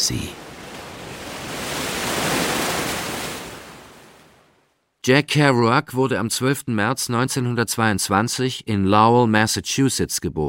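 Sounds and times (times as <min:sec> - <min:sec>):
ocean surf wave breaking: 0:00.0 - 0:04.8
speech: 0:00.1 - 0:00.4, 0:05.0 - 0:10.4.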